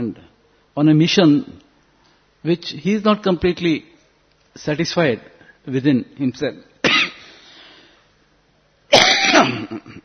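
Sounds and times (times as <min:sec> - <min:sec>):
speech: 0:00.0 - 0:01.6, 0:02.4 - 0:03.9, 0:04.6 - 0:06.7
person coughing harshly: 0:06.8 - 0:07.3, 0:08.9 - 0:10.0.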